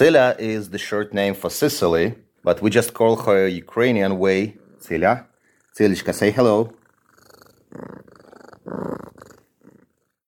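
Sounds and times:
speech: 0:00.0 - 0:06.8
female cat purring at an animal shelter: 0:02.4 - 0:10.2.

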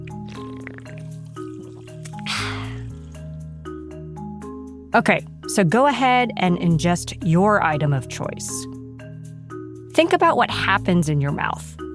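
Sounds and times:
sipping sparkling water from a can: 0:00.1 - 0:03.4
speech: 0:04.9 - 0:08.7, 0:10.0 - 0:11.8.

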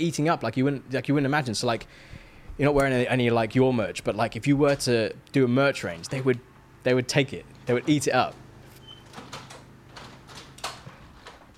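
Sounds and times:
speech: 0:00.0 - 0:08.4
door being pushed shut: 0:07.8 - 0:11.5
door latch clicks: 0:08.4 - 0:11.5.

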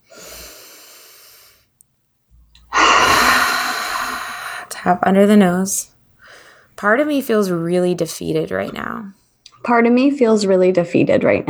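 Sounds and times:
deep breath during a guided tapping self-acceptance exercise: 0:00.0 - 0:01.6, 0:02.7 - 0:05.4, 0:06.2 - 0:06.8
speech: 0:04.8 - 0:06.0, 0:06.8 - 0:11.4.

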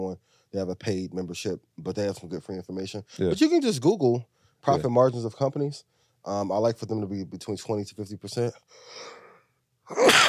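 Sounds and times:
speech: 0:00.0 - 0:09.2, 0:09.9 - 0:10.2
quick breathy intake before a sneeze: 0:08.7 - 0:09.5
loud sneeze: 0:09.9 - 0:10.2.

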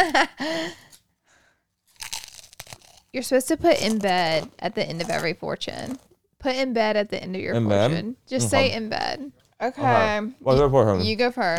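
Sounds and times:
speech: 0:00.1 - 0:00.8, 0:03.1 - 0:11.5
fortune cookies being cracked open: 0:01.8 - 0:06.2.

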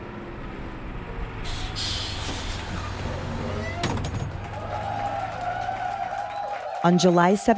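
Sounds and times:
large bus engine idling: 0:00.0 - 0:06.5
bus air brakes hissing: 0:01.4 - 0:03.8
speech: 0:06.8 - 0:07.5.

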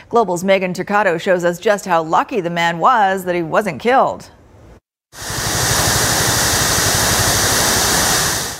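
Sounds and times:
speech: 0:00.1 - 0:04.4
steady rush of falling water: 0:05.2 - 0:08.5.

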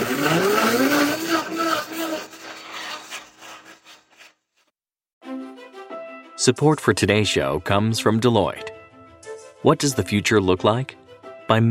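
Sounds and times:
blender whirring while mixing a cocktail: 0:00.0 - 0:03.4
speech: 0:06.4 - 0:08.7, 0:09.6 - 0:11.6.

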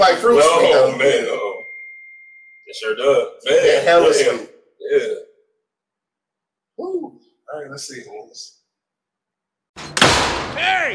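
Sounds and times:
speech: 0:00.0 - 0:01.5, 0:02.7 - 0:05.3, 0:06.8 - 0:08.6, 0:09.8 - 0:10.9
door slamming shut against its frame: 0:09.8 - 0:10.9.

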